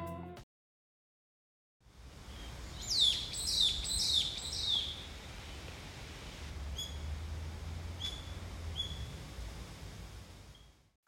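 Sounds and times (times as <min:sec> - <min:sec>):
wind through the trees by a pond: 0:01.8 - 0:11.0
small birds chirping by a pond in a wooded grove: 0:02.3 - 0:05.1, 0:08.0 - 0:09.2.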